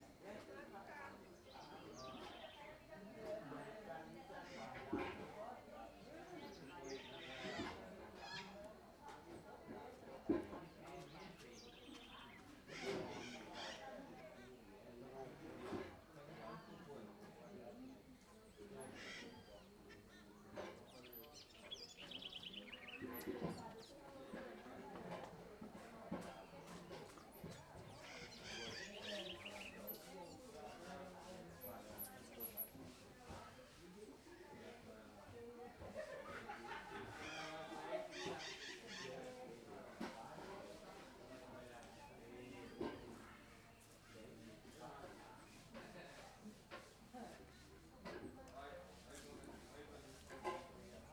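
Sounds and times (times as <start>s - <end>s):
hubbub of voices in the neighbouring house: 0.0s - 51.1s
macaws calling: 12.7s - 14.1s, 18.9s - 20.3s, 27.9s - 29.8s, 37.1s - 39.4s
laughter: 35.8s - 37.7s.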